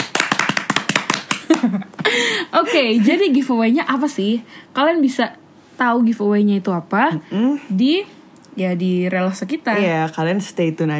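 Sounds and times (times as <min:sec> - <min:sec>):
quick crisp hand clapping: 0:00.0 - 0:02.1
speech: 0:01.6 - 0:10.9.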